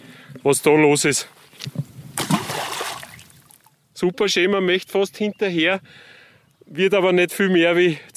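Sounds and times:
speech: 0.4 - 1.8, 4.0 - 8.1
handful of stones splashing into a lake: 2.2 - 3.7.

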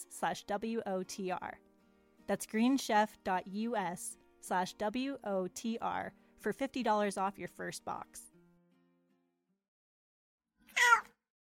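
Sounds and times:
speech: 0.0 - 1.7, 2.3 - 8.3
cat meowing: 10.7 - 11.1.

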